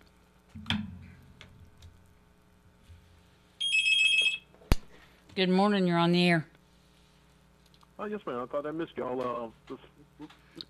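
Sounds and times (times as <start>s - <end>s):
telephone ringing with a loud electronic trill for an incoming call: 3.6s - 4.5s
speech: 5.4s - 6.5s, 8.0s - 10.4s.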